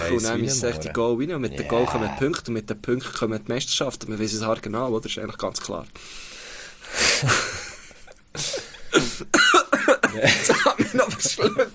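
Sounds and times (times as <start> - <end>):
person trying to speak between coughs: 0.0 - 2.4
speech: 0.1 - 6.3, 7.2 - 7.6, 8.4 - 9.6, 10.2 - 11.7
strained wheezy breathing after choking: 6.0 - 9.3
person coughing after choking on saliva: 8.4 - 11.7.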